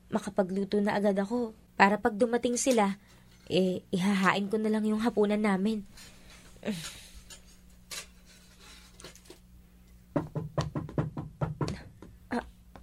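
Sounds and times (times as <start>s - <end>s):
faint steady hum: 0.0s - 12.8s
speech: 0.2s - 7.0s
knocking on a door: 10.1s - 12.2s.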